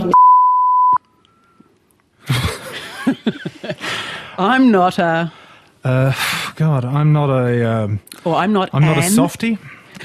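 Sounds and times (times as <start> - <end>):
speech: 0.0 - 0.3, 4.4 - 9.7
censoring bleep over a spoken word in a parliament speech: 0.0 - 1.6
laughter: 2.2 - 4.1.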